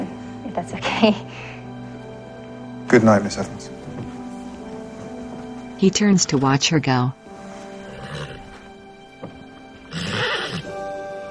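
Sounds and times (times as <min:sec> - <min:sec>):
speech: 0:00.5 - 0:01.6, 0:02.9 - 0:03.8, 0:05.8 - 0:07.2
horse whinnying: 0:07.7 - 0:08.7, 0:09.7 - 0:10.8.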